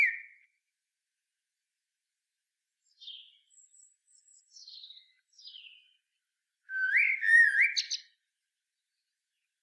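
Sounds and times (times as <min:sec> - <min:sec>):
common blackbird Turdus merula singing: 0:02.9 - 0:06.0, 0:06.7 - 0:08.2.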